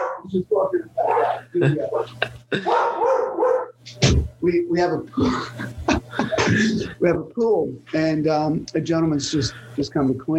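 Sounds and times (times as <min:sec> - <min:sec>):
dog barking: 0:00.0 - 0:00.3, 0:01.0 - 0:01.4, 0:02.6 - 0:03.8
speech: 0:00.2 - 0:03.0, 0:04.2 - 0:05.8, 0:06.5 - 0:10.3
laughter: 0:05.1 - 0:07.0.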